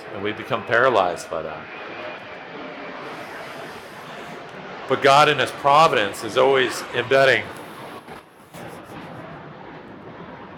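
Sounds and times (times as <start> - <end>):
airplane passing overhead: 0.0 - 10.5
speech: 0.1 - 2.0, 4.9 - 7.6.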